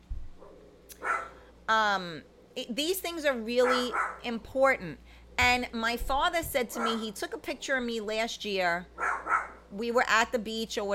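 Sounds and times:
dog barking: 0.4 - 1.4, 3.6 - 4.3, 6.8 - 7.1, 9.0 - 9.6
speech: 1.7 - 9.0, 9.7 - 10.9.

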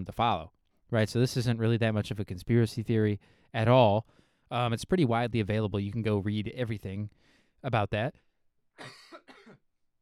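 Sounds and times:
speech: 0.0 - 8.2, 8.8 - 9.6
harsh coughs: 8.8 - 9.6.

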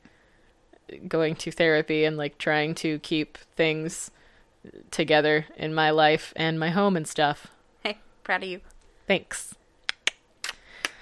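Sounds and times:
speech: 1.0 - 9.6
finger snaps made as finger guns: 9.9 - 11.0.

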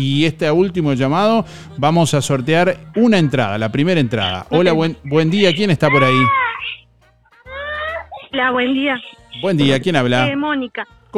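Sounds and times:
speech: 0.0 - 6.4, 8.3 - 11.1
baby crying: 4.1 - 10.3.

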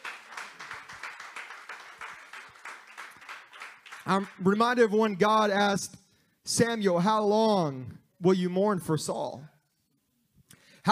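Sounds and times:
audience clapping hands in praise: 0.0 - 4.5
speech: 4.1 - 9.5.

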